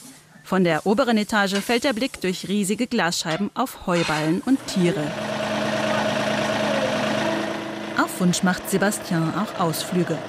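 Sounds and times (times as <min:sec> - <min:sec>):
speech: 0:00.5 - 0:05.3, 0:08.2 - 0:10.2
small green tractor engine chugging while pulling a trailer on country roads: 0:04.2 - 0:10.2.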